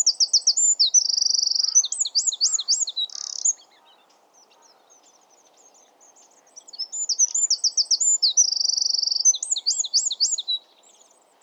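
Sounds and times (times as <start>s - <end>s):
Eurasian wren singing: 0.0s - 3.8s, 6.6s - 10.6s.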